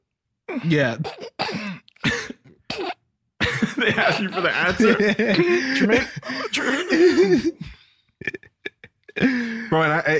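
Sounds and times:
speech: 0.5 - 1.2, 3.8 - 7.7, 9.2 - 10.1
stifled coughs held back with closed lips: 1.0 - 7.8
laughter: 3.4 - 10.1.

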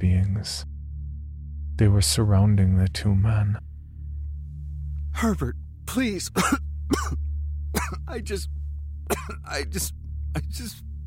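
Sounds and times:
speech: 0.4 - 0.7, 1.8 - 3.7, 5.2 - 7.2, 7.9 - 10.8
harsh coughs: 6.2 - 8.5, 9.1 - 10.8.

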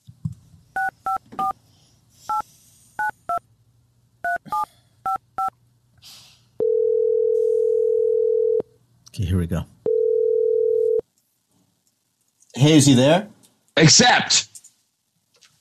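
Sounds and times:
faint hum: 0.0 - 15.5
steady continuous telephone line tone: 6.6 - 8.7, 9.8 - 11.0
speech: 9.4 - 9.8, 12.6 - 14.5.

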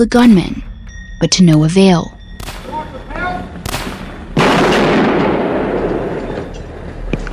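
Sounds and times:
speech: 0.0 - 0.6, 1.2 - 2.2
rifle shots fired up at a university tower: 2.4 - 6.4.

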